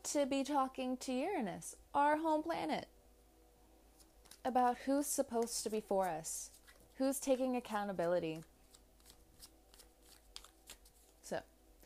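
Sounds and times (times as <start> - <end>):
faint hum: 0.0 - 11.8
speech: 0.1 - 3.0, 4.4 - 8.5, 11.3 - 11.5
tarot cards being shuffled for a reading: 4.0 - 4.5, 5.4 - 7.0, 8.0 - 11.3.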